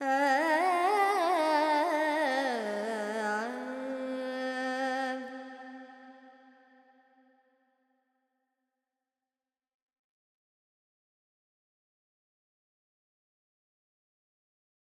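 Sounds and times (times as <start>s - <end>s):
Carnatic woman singing alaps in Purvi Kalyani: 0.0s - 6.2s.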